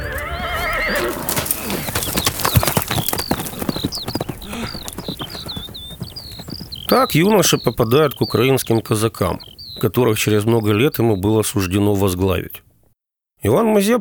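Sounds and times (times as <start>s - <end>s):
horse whinnying: 0.0s - 10.7s
birds chirping: 0.0s - 12.8s
speech: 6.9s - 12.6s, 13.4s - 14.0s.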